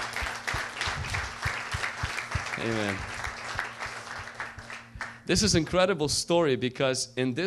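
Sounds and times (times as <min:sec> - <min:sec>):
congregation clapping in a large room: 0:00.0 - 0:05.9
speech: 0:02.6 - 0:03.1, 0:05.3 - 0:07.4.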